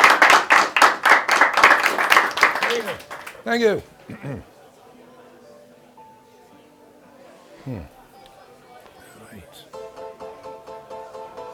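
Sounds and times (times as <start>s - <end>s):
crowd applauding: 0.0s - 3.9s
speech: 2.8s - 4.5s, 7.6s - 7.9s.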